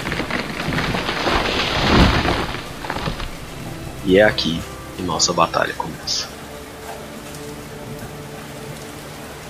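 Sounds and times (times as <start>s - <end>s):
lightning strike thunder crack and rumble: 0.0s - 4.8s
steady heavy rain: 0.0s - 9.4s
speech: 4.1s - 6.3s.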